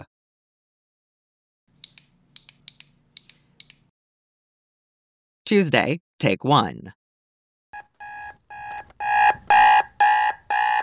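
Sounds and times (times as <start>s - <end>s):
speech: 5.5s - 7.0s
electronic alarm clock beeping: 7.8s - 10.8s.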